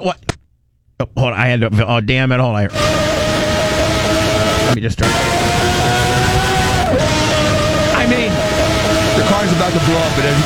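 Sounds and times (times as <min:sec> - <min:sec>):
speech: 0:00.0 - 0:00.3, 0:01.0 - 0:03.2, 0:04.7 - 0:06.1, 0:09.3 - 0:10.4
V12 racing car engine droning: 0:02.7 - 0:10.4.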